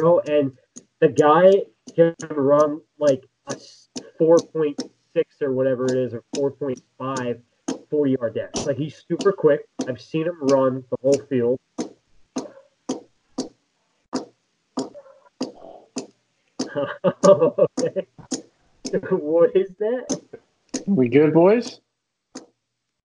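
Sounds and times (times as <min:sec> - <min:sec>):
speech: 0:00.0 - 0:11.9, 0:16.7 - 0:21.8
clock ticking: 0:00.0 - 0:21.8
laughter: 0:08.1 - 0:11.5, 0:16.7 - 0:18.2, 0:19.0 - 0:20.1.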